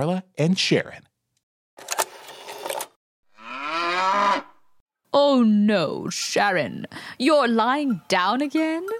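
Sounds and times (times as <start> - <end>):
speech: 0.0 - 1.1, 5.2 - 8.9
cow mooing on a farm: 3.3 - 4.7.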